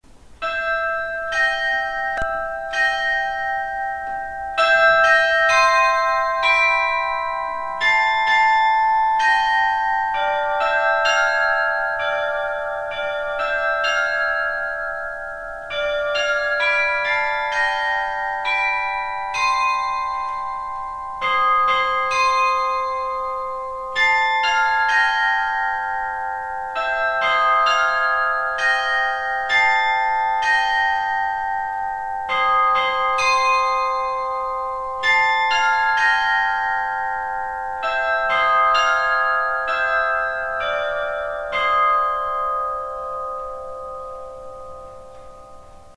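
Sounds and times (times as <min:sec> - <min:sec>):
eight Grassmayr bells ringing: 0:00.1 - 0:45.9.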